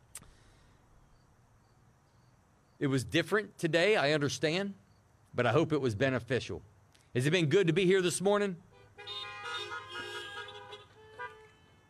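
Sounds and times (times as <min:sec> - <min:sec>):
low traffic rumble: 0:00.0 - 0:11.8
speech: 0:02.8 - 0:09.2
car horn honking: 0:08.7 - 0:11.8.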